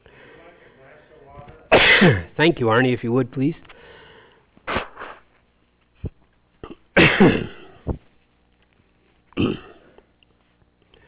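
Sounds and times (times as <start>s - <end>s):
harsh dry hacking coughing fit from a dry throat tickle: 1.7s - 2.3s, 6.6s - 8.0s, 9.4s - 10.0s
speech: 2.0s - 3.7s.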